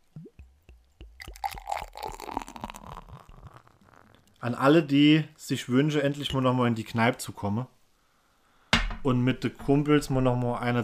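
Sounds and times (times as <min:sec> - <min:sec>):
beer glugging and gurgling as it is poured into a glass: 0:01.0 - 0:04.3
speech: 0:04.4 - 0:07.8, 0:09.0 - 0:10.8.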